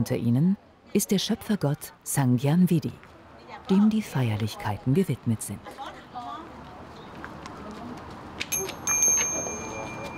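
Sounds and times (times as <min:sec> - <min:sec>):
speech: 0:00.0 - 0:06.0
priest ringing a small ritual hand bell: 0:08.5 - 0:10.1.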